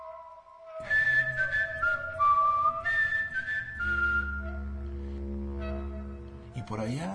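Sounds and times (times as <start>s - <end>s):
person whistling a short wavering tune: 0.0s - 4.8s
low steady droning hum: 3.8s - 6.8s.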